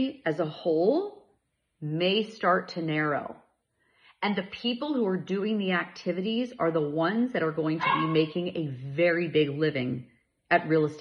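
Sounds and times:
speech: 0:00.0 - 0:01.2, 0:01.8 - 0:03.4, 0:04.2 - 0:11.0
puppy barking and whimpering: 0:07.8 - 0:08.4.

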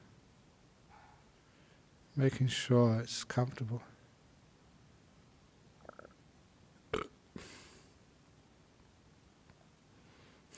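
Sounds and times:
speech: 0:02.2 - 0:03.9
short soft burp: 0:05.8 - 0:06.2, 0:06.9 - 0:07.4.

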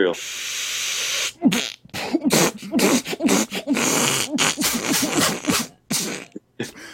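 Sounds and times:
raspy breathy gasps: 0:00.2 - 0:06.9
person in a hard coughing fit after taking a hit: 0:02.0 - 0:06.8.

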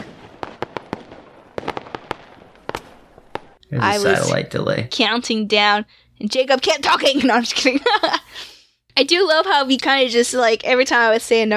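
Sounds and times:
fireworks crackling and popping: 0:00.0 - 0:03.6
speech: 0:03.7 - 0:11.5.

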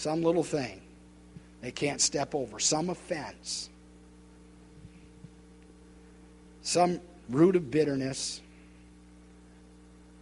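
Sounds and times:
speech: 0:00.0 - 0:00.9, 0:01.6 - 0:03.7, 0:06.6 - 0:08.4
man speaking in a reverberant space: 0:00.0 - 0:01.0, 0:01.6 - 0:03.8, 0:06.6 - 0:08.6
steady low electrical hum: 0:00.0 - 0:10.1.

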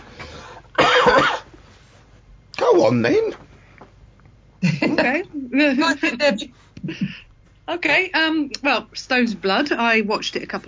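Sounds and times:
single loud throaty cough: 0:00.8 - 0:01.5
speech: 0:02.8 - 0:03.4, 0:05.0 - 0:10.6.

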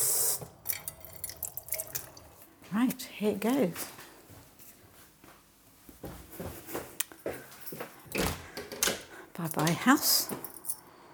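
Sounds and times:
water running from a tap into a bottle: 0:00.0 - 0:02.5
speech: 0:02.7 - 0:04.0, 0:09.6 - 0:10.5.

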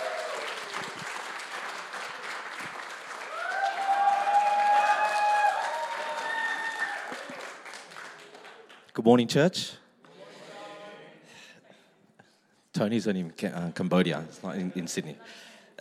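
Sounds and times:
audience applause for mission team: 0:00.0 - 0:08.8
whistles and cheers: 0:03.3 - 0:07.2
speech: 0:09.0 - 0:09.8, 0:12.8 - 0:15.8.

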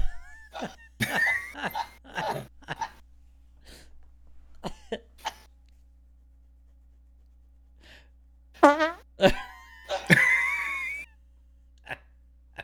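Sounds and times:
laughter: 0:00.0 - 0:03.0, 0:09.2 - 0:11.1
hand-made fart noises: 0:08.6 - 0:09.0.

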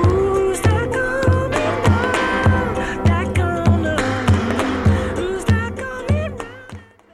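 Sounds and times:
bright sustained melodic lines: 0:00.0 - 0:06.8
steady punchy drumbeat: 0:00.0 - 0:06.9
sharp cymbal hits: 0:01.1 - 0:06.8.

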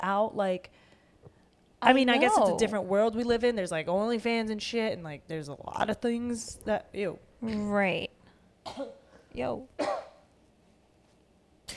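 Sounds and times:
speech: 0:00.0 - 0:00.9, 0:01.8 - 0:10.0
short harsh cough: 0:08.6 - 0:09.1, 0:09.8 - 0:10.3.

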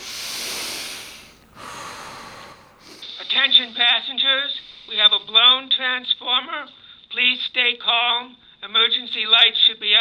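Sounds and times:
slow deep breathing of a person calming down in darkness: 0:00.0 - 0:03.0
speech: 0:03.4 - 0:09.9.

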